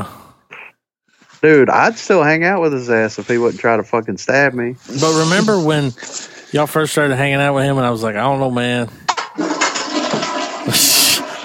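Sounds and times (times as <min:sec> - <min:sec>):
speech: 0:01.4 - 0:09.6, 0:10.7 - 0:11.0
toilet flushing with rushing gurgling water: 0:09.3 - 0:11.4.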